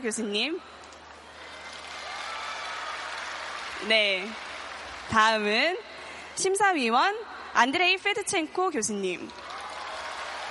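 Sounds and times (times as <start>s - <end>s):
speech: 0.0s - 0.9s, 3.8s - 4.5s, 5.1s - 9.4s
audience applauding at a ceremony: 1.3s - 5.1s, 9.3s - 10.4s.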